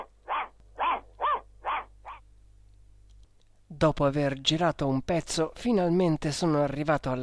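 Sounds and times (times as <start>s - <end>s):
dog running along the main road barking: 0.0s - 2.2s
faint low hum: 0.0s - 7.2s
speech: 3.8s - 7.2s.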